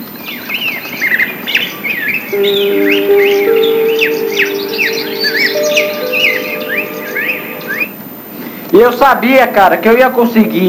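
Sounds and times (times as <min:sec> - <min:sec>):
chorus of many birds chirping and tweeting: 0:00.0 - 0:10.6
speech: 0:02.3 - 0:03.2, 0:08.8 - 0:10.6
sustained steady tones: 0:02.3 - 0:08.2.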